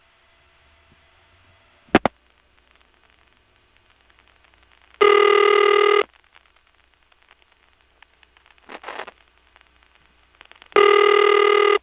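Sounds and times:
telephone ringback tone: 5.0 - 6.1, 10.7 - 11.8
telephone line clicks: 10.7 - 11.8.

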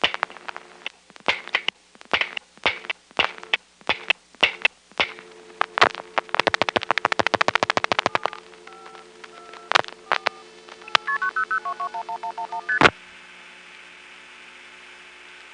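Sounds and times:
clicks: 0.0 - 11.2
touch-tone dialing of a telephone call to a 900 area code: 5.6 - 12.9.

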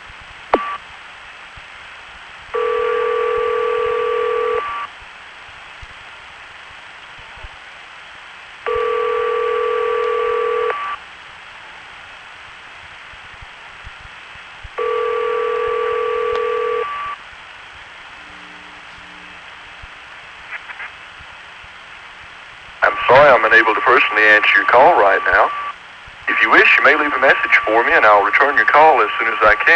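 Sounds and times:
hiss on a thin tinny phone line: 0.6 - 0.8, 2.5 - 5.0, 8.6 - 11.1, 14.7 - 17.2, 18.1 - 20.9, 22.8 - 29.7
telephone ringback tone on a thin tinny phone line: 2.6 - 4.9, 8.7 - 11.0, 14.8 - 17.2, 24.5 - 25.7
speech: 23.4 - 25.6, 26.4 - 29.7.

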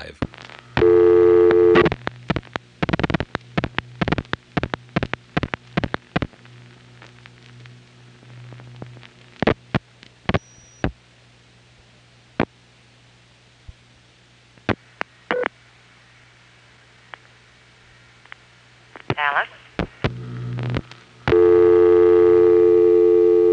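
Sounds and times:
low hum and static on a telephone line: 0.0 - 23.5
telephone line dial tone: 21.3 - 23.5.

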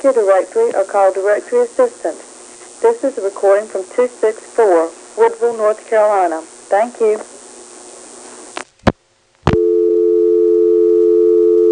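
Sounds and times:
speech: 0.0 - 7.3
hiss of telephone line noise: 0.0 - 9.9
steady telephone dial tone: 9.6 - 11.7.

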